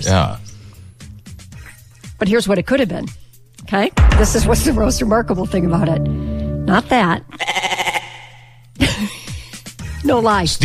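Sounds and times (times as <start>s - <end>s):
speech: 0.0s - 0.4s, 2.2s - 7.6s, 10.0s - 10.6s
goat bleating: 7.3s - 8.5s.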